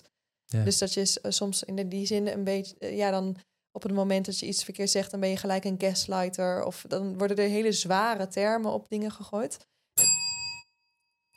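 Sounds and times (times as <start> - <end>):
speech: 0.5 - 9.7
small bell ding: 10.0 - 11.3.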